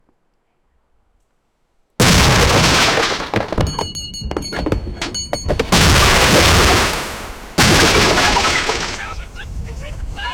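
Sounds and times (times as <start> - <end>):
ship hull buckling and bending: 2.0 - 9.3.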